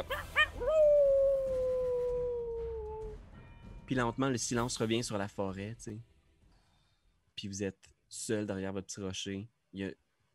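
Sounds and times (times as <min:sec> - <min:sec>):
dog yelping in a forest: 0:00.0 - 0:02.1
dog howling in a forest: 0:00.0 - 0:03.2
speech: 0:03.9 - 0:06.1, 0:07.4 - 0:10.0.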